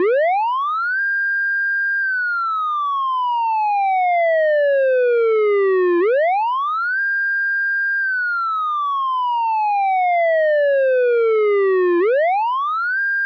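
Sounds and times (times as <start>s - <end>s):
distant police car siren: 0.0s - 13.2s.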